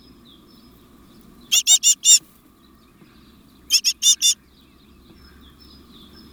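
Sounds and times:
faint low background hum: 0:00.0 - 0:06.3
Parus major giving rasping buzzy notes: 0:01.5 - 0:02.2, 0:03.7 - 0:04.4.

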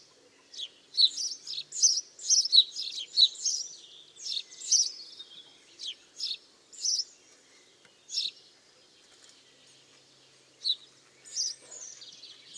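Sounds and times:
house sparrow Passer domesticus chirping: 0:00.0 - 0:07.2, 0:08.0 - 0:08.5, 0:10.6 - 0:12.5.

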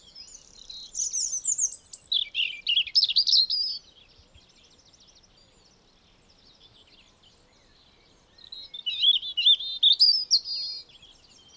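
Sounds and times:
European robin Erithacus rubecula singing: 0:00.0 - 0:03.8, 0:08.4 - 0:11.5.

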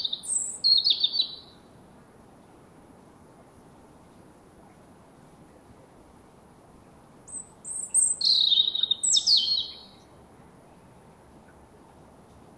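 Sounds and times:
European robin Erithacus rubecula singing: 0:00.0 - 0:01.7, 0:07.3 - 0:10.2.

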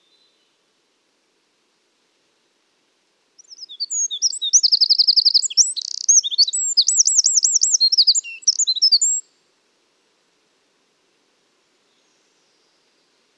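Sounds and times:
Eurasian wren Troglodytes troglodytes singing: 0:03.4 - 0:09.2.

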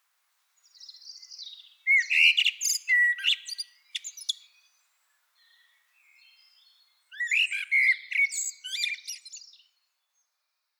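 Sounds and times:
common blackbird Turdus merula singing a short song phrase: 0:00.7 - 0:04.8, 0:05.4 - 0:09.7.

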